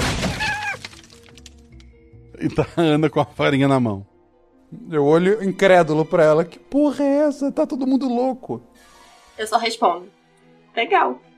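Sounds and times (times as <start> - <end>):
wooden chair smashing against a wall and breaking apart: 0.0 - 1.7
speech: 2.4 - 4.1, 4.7 - 10.2, 10.8 - 11.3.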